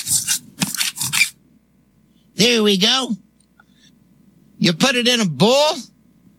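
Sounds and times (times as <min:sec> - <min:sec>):
food being scraped off a kitchen counter: 0:00.0 - 0:01.4
speech: 0:02.4 - 0:03.3, 0:04.6 - 0:05.9.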